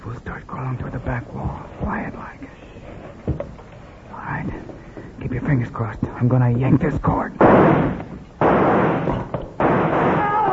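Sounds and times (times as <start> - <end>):
speech: 0.1 - 2.6, 5.3 - 7.8
gunshots: 7.4 - 10.5.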